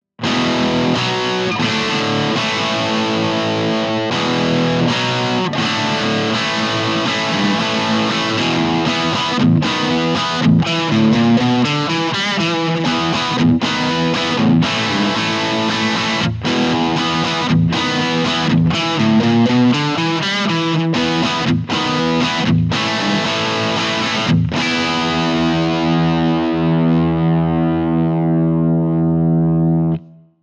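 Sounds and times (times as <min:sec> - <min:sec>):
rock chords: 0:00.2 - 0:30.2.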